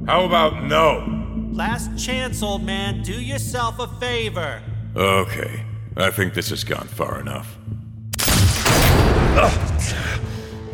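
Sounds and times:
speech: 0.1s - 7.8s, 9.4s - 10.4s
loud gunshot: 8.2s - 9.9s.

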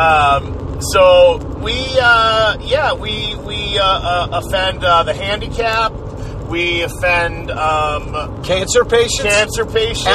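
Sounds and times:
steady low rumble: 0.0s - 10.1s
speech: 0.4s - 10.1s
voice imitating cars whooshing past on a closed highway: 9.8s - 10.1s.

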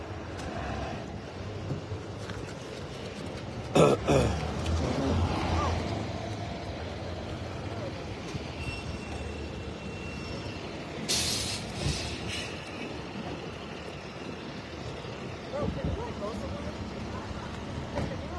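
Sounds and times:
heavy tow truck rumbling: 0.0s - 18.3s
tow truck air brakes hissing: 8.5s - 12.9s.

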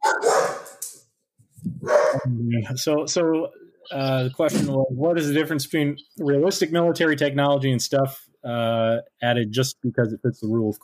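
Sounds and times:
dog barking: 0.0s - 0.8s, 1.8s - 2.3s
speech: 1.8s - 10.8s.

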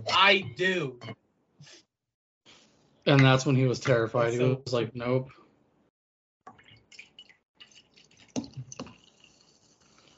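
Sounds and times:
speech: 0.2s - 1.8s, 3.1s - 5.4s
soda pouring into a cup: 6.9s - 10.1s.

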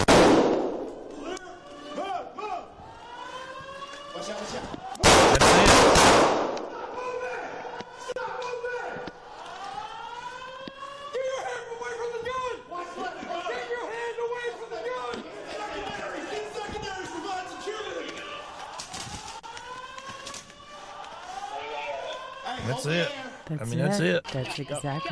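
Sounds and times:
gunshots in bodycam footage: 0.0s - 1.4s, 4.4s - 7.0s
wailing siren-like tone: 0.8s - 5.0s, 6.8s - 25.1s
people shouting: 1.1s - 25.1s
speech: 23.7s - 25.1s.

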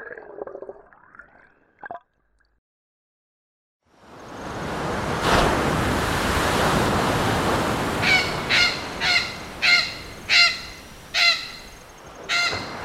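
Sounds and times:
ocean surf roaring: 4.1s - 12.8s
ocean wave crashing: 4.3s - 11.1s, 12.2s - 12.8s.

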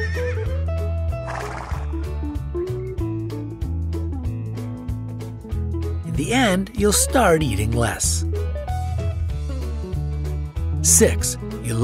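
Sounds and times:
horse neighing: 0.0s - 0.5s, 1.2s - 2.0s
rhythmic music with a regular beat: 0.0s - 11.8s
horse snorting: 1.2s - 2.0s
speech: 6.2s - 8.3s, 11.0s - 11.8s.

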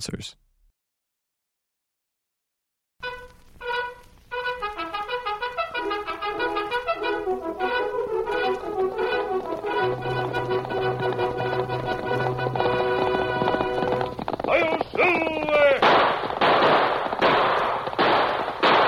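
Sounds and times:
speech: 0.0s - 0.4s
orchestral music: 3.0s - 14.2s
galloping horse hoofbeats: 3.0s - 18.8s.

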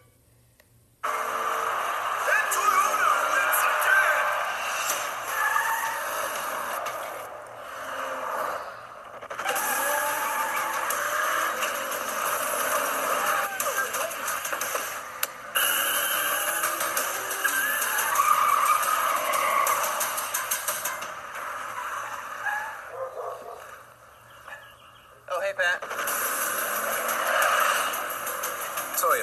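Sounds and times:
stock cars racing in a NASCAR race: 1.1s - 22.8s
stock car tires skidding and squealing: 1.1s - 22.9s, 25.9s - 29.0s.

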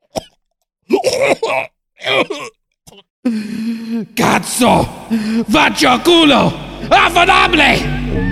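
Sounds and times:
person choking and coughing on pasta stuck in the throat: 0.0s - 3.1s
speech: 1.5s - 2.5s, 4.4s - 8.2s.

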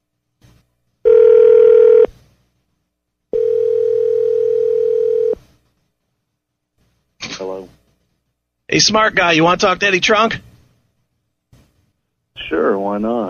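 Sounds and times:
person answering phone: 1.1s - 2.1s, 3.4s - 5.4s
telephone ringback tone while phoning someone: 1.1s - 2.1s, 3.3s - 5.4s
speech: 8.7s - 10.5s, 12.9s - 13.2s.

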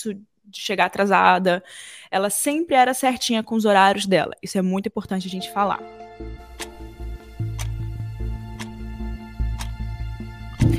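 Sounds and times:
speech: 0.0s - 6.7s
low sustained musical drone: 5.9s - 10.7s
clock ticking: 6.5s - 10.0s.

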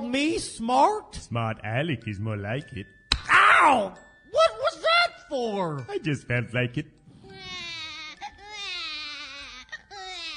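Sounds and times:
speech: 0.1s - 3.0s, 3.6s - 4.1s, 5.3s - 7.0s
colicky baby crying: 7.2s - 10.3s.

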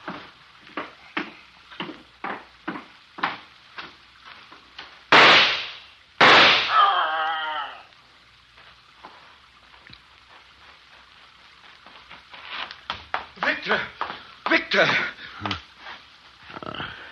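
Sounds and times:
gunshot fired at an animal: 5.1s - 6.8s
people talking: 13.4s - 15.6s.

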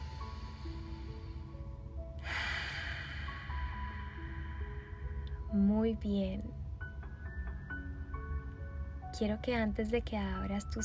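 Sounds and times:
deep breath drawn in and let out during a guided breathing relaxation exercise: 0.0s - 5.5s
soft sustained tones: 0.0s - 10.8s
speech: 5.6s - 6.6s, 9.2s - 10.8s.

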